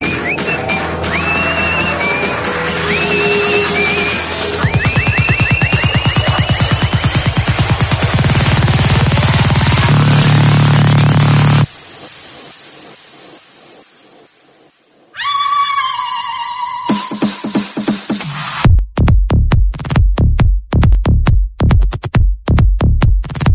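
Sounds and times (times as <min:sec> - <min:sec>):
whistle in psytrance background music: 0:00.0 - 0:07.4, 0:15.2 - 0:17.8
psytrance background music: 0:00.0 - 0:23.5.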